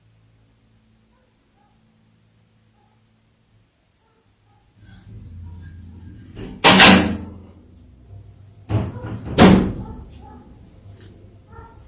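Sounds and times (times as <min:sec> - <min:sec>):
low steady hum: 0:00.0 - 0:11.8
door opening and slamming: 0:04.8 - 0:07.5, 0:08.7 - 0:10.2.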